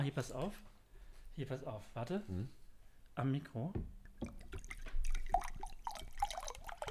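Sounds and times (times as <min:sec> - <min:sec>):
speech: 0:00.0 - 0:00.8, 0:01.4 - 0:02.6, 0:03.2 - 0:04.5
bottled mineral water pouring: 0:04.0 - 0:06.8.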